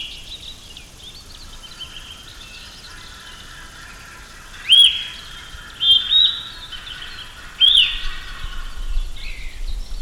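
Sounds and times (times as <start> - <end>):
Patagonian thrush singing in Patagonia: 1.5 - 9.9.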